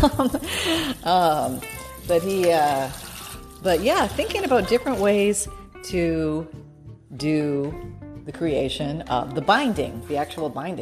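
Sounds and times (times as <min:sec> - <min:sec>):
speech: 0:00.0 - 0:03.0, 0:03.6 - 0:10.8
tap water running and splashing into a sink as a small bowl is rinsed: 0:00.1 - 0:05.4.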